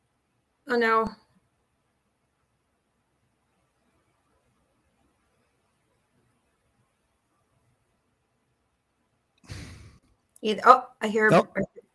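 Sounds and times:
speech: 0:00.7 - 0:01.2, 0:10.4 - 0:11.8
short voiced murmur or sigh over a call line: 0:09.5 - 0:09.9, 0:11.3 - 0:11.7
breathy exhale over a call line: 0:09.5 - 0:10.0.

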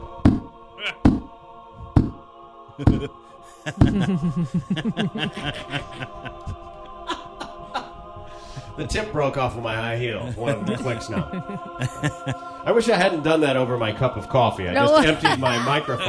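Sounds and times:
wooden confessional door thumping as it is jostled and pulled open: 0:01.1 - 0:02.2
speech: 0:02.8 - 0:06.4, 0:08.8 - 0:16.0
soft rhythmic chuckling: 0:02.8 - 0:08.0, 0:10.2 - 0:12.4.

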